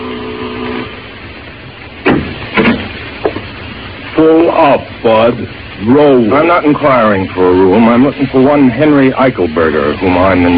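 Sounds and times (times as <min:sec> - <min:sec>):
buzzing doorbell tone: 0:00.0 - 0:01.1
speech: 0:04.2 - 0:10.5.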